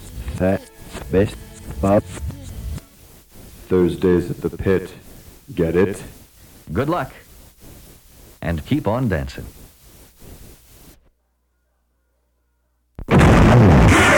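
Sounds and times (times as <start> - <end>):
speech: 0.4 - 2.4, 3.7 - 7.2, 8.4 - 9.6
loud explosion-like boom: 13.1 - 14.0.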